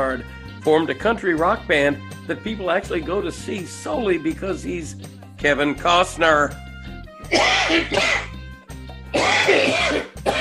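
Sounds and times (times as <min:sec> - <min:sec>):
speech: 0:00.0 - 0:06.6, 0:07.3 - 0:08.3, 0:09.1 - 0:10.3
harsh coughing fits: 0:07.3 - 0:08.4, 0:09.1 - 0:10.3.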